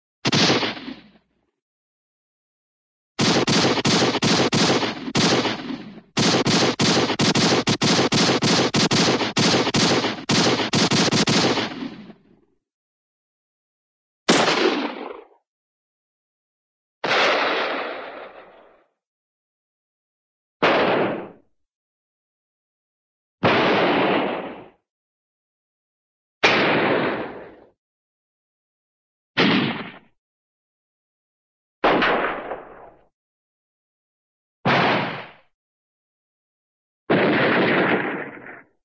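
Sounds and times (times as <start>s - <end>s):
cartoon handgun single gunshot: 0.2s - 1.2s, 3.2s - 12.3s, 14.3s - 15.4s, 17.0s - 18.9s, 20.6s - 21.4s, 23.4s - 24.8s, 26.4s - 27.7s, 29.4s - 30.1s, 31.8s - 33.0s, 34.7s - 35.5s, 37.1s - 38.8s.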